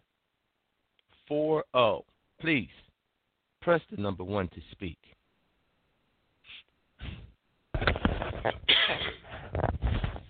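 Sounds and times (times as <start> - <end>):
speech: 1.3 - 2.8, 3.6 - 5.2, 7.8 - 9.7
coughing-like rasps: 8.4 - 9.5
throat clearing: 8.5 - 9.4.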